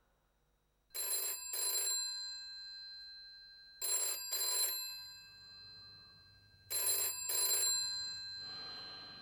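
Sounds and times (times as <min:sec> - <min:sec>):
telephone ringing in classic double bursts: 0:01.0 - 0:02.6, 0:03.8 - 0:05.7, 0:06.7 - 0:08.4.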